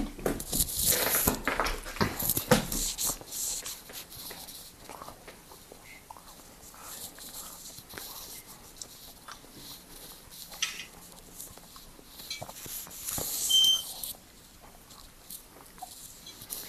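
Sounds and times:
rustling: 0.0 - 16.6
smoke alarm low-battery warning chirp: 13.4 - 14.0.

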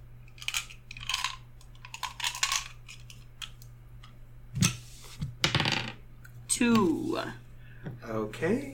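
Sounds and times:
low hum: 0.0 - 8.7
small six-sided die clattering across a hard table: 5.4 - 6.0
speech: 6.6 - 8.7.

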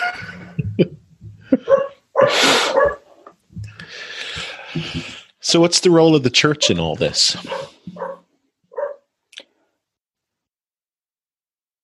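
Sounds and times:
speech: 0.8 - 1.0, 5.5 - 7.7
dog making short snorting sneezy noises: 1.7 - 3.1, 7.4 - 8.2.

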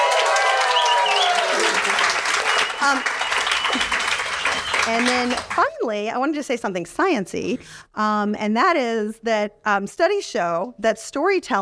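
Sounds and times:
crowd applause: 0.0 - 5.8
cheers: 0.0 - 5.9
speech: 2.8 - 4.0, 4.8 - 11.5.

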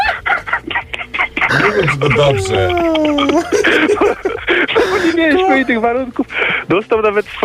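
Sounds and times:
laughter: 0.0 - 6.7
rooster tied to a radiator with a USB cable clucking: 1.4 - 3.2
speech: 1.6 - 7.4.

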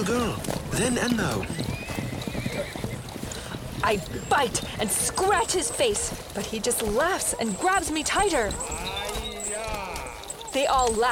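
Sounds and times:
speech: 0.0 - 1.7, 2.6 - 2.9, 3.8 - 9.2, 10.5 - 11.1
warrior's horse hooves clip-clopping: 0.0 - 11.1
warrior's horse neighing: 1.1 - 3.4, 8.2 - 11.1.

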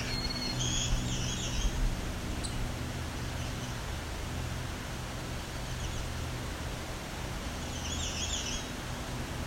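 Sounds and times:
songbird singing, possibly a warbler: 0.0 - 3.8, 7.6 - 8.8
steady hiss of outdoor noise: 0.0 - 9.4.

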